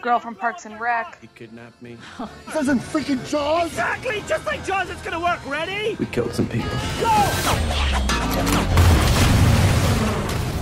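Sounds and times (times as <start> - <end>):
speech: 0.0 - 9.0
crackling debris: 8.5 - 10.5
explosions booming: 8.7 - 10.5.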